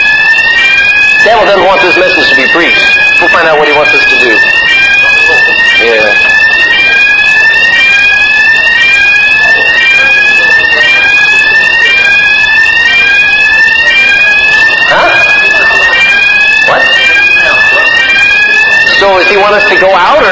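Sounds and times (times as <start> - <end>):
fire alarm with electronic sweeping tones: 0.0 - 20.2
person preaching a sermon: 1.2 - 4.5, 5.4 - 6.3, 14.8 - 20.2
speech: 1.3 - 4.7, 5.8 - 6.4, 19.0 - 20.2
laughter: 1.4 - 12.0, 12.8 - 20.2.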